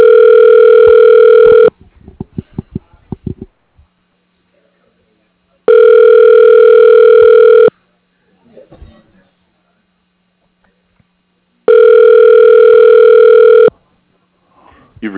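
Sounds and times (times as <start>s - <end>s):
telephone ringback tone over the line to an office extension: 0.0s - 1.7s, 5.7s - 7.7s, 11.7s - 13.7s.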